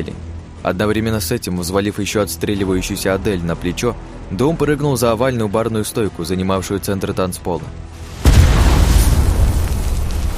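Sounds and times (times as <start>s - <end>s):
speech: 0.0s - 8.0s
two grenades detonating together on a dance floor: 8.1s - 10.3s.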